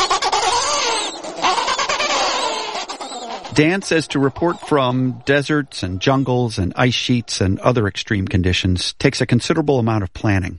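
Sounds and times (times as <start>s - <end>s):
penguins squawking in a rookery: 0.0s - 6.4s
speech: 3.6s - 10.5s.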